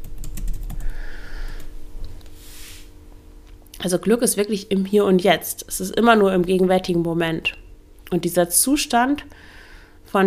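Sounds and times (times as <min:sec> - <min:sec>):
rapid typing on a computer keyboard: 0:00.0 - 0:00.9
speech: 0:03.8 - 0:09.5.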